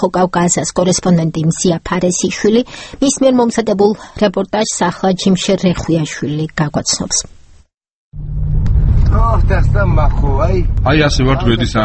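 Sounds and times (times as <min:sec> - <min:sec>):
speech: 0:00.0 - 0:07.4, 0:09.1 - 0:11.8
car rumbling on a rough rural road: 0:08.1 - 0:11.8.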